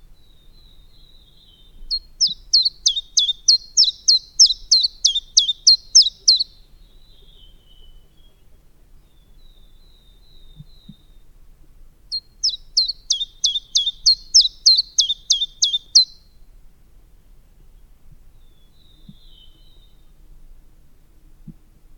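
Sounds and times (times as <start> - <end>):
common chiffchaff singing: 2.2 - 6.5, 12.4 - 16.1.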